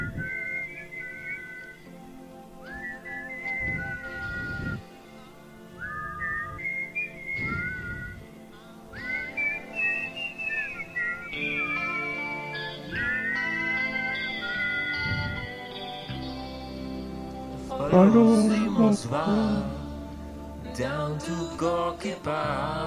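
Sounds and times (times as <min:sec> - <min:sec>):
whistled melody: 0:00.0 - 0:22.8
speech: 0:18.0 - 0:19.8, 0:20.8 - 0:22.8.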